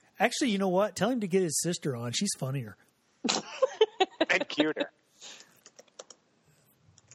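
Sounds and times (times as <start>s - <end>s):
speech: 0.2s - 2.8s, 4.4s - 5.4s
laughter: 3.3s - 4.9s
typing on a computer keyboard: 5.6s - 6.2s.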